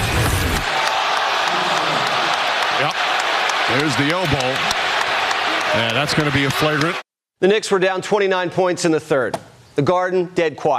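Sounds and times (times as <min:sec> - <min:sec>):
large arena crowd roaring in reaction to a replay: 0:00.4 - 0:07.0
scattered shouts: 0:00.6 - 0:07.0
speech: 0:03.7 - 0:04.8, 0:05.7 - 0:10.7.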